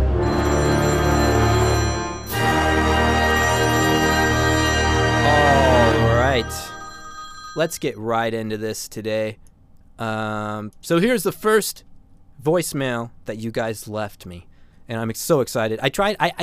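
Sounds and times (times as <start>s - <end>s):
loud electronic ringtone-like tone with buzzy harmonics: 0.2s - 7.8s
speech: 7.6s - 16.4s.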